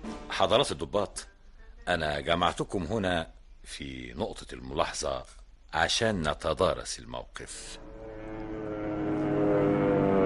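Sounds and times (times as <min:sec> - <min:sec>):
speech: 0:00.4 - 0:07.9
enemy airplanes flying high overhead: 0:07.8 - 0:10.2.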